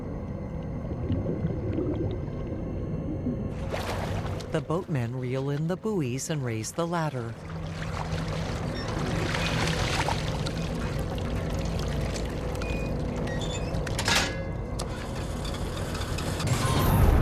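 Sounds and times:
low boat motor engine hum: 0.0s - 16.8s
boat propeller churning water as boat starts off: 0.4s - 14.1s
speech: 4.5s - 7.5s.

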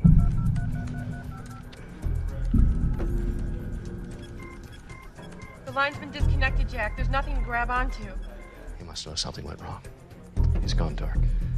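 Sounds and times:
telephone touch-tone beeps dialing a number: 0.0s - 8.8s
speech: 5.8s - 8.3s, 9.0s - 10.0s, 10.6s - 11.4s.

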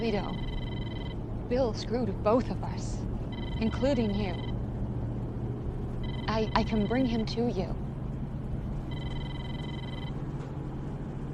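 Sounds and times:
speech: 0.0s - 0.6s, 1.5s - 4.6s, 6.3s - 7.8s
telephone ringing with electronic trill: 0.0s - 1.2s, 3.3s - 4.6s, 6.0s - 7.1s, 8.9s - 10.2s
low rumble: 0.0s - 11.3s.

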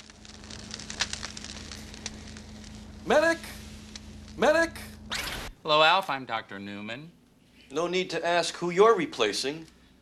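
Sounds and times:
crackling and sizzling of a man's body electrocuted by high voltage: 0.0s - 5.5s
low electrical hum: 0.0s - 10.0s
speech: 5.7s - 9.8s.

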